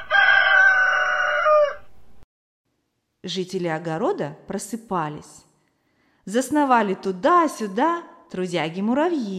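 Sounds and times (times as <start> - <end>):
neighbor's rooster crowing hoarsely on a fence: 0.0 - 2.1
speech: 3.2 - 5.5, 6.3 - 9.3.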